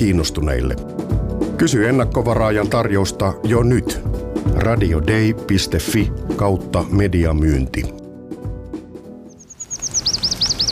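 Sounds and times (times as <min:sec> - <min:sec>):
speech: 0:00.0 - 0:08.0
flocks of birds gathered for autumn migration chirping: 0:09.1 - 0:10.7.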